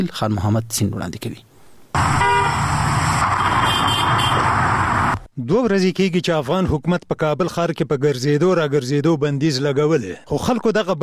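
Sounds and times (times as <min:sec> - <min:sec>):
speech: 0:00.0 - 0:02.2, 0:05.4 - 0:11.0
car horn toots: 0:02.0 - 0:04.6
dense car traffic in a busy Kabul market street: 0:02.0 - 0:05.3.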